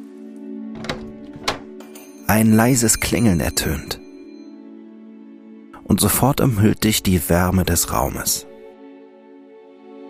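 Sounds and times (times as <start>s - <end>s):
brass door handle and latch clunks: 0.7s - 2.0s
speech: 2.3s - 4.0s, 5.9s - 8.5s.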